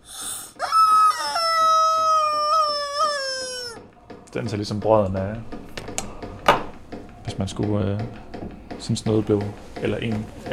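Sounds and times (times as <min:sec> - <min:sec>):
hen-shaped squeaky toy being squeezed: 0:00.6 - 0:03.8
speech: 0:04.4 - 0:05.6, 0:07.4 - 0:10.5.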